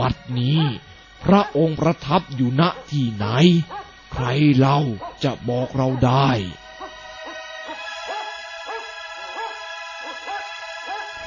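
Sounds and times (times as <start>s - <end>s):
speech: 0.0s - 6.6s
constant tonal hum: 0.0s - 11.2s
dog barking with sharp yelping barks: 0.6s - 1.6s, 2.7s - 2.9s, 3.7s - 3.9s, 5.0s - 5.2s, 5.8s - 11.2s.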